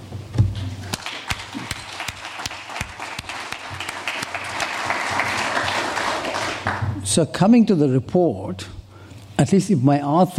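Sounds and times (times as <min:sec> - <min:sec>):
audience applause: 0:00.8 - 0:07.0
speech: 0:07.2 - 0:08.8, 0:09.4 - 0:10.3.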